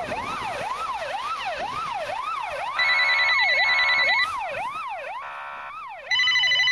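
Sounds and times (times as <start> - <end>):
rapid wailing siren: 0.0 - 6.7
electronic telephone ringing: 2.8 - 4.3, 6.1 - 6.7.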